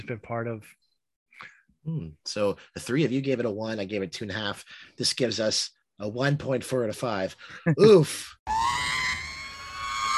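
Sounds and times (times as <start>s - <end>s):
speech: 0.0s - 8.8s
loud high-pitched scream: 8.5s - 10.1s.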